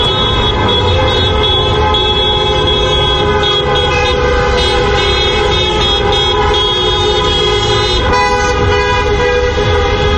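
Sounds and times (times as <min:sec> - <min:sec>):
car horns honking in street celebration: 0:00.0 - 0:10.1
traffic rumble: 0:00.0 - 0:10.1.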